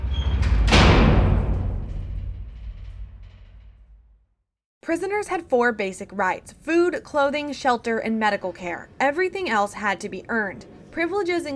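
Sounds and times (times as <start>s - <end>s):
heavy solid steel outer door of a prison dark cell slamming shut: 0.0s - 4.3s
speech: 4.8s - 11.5s.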